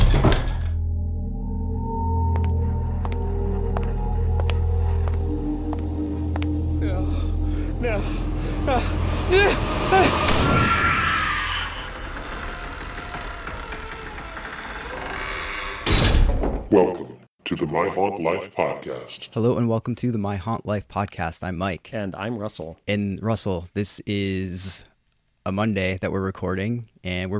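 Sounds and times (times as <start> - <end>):
low droning hum: 0.8 - 10.5
rushing noise: 4.7 - 15.8
door creaking open with squeaky groans: 10.3 - 16.7
speech: 17.8 - 24.9, 25.5 - 27.3.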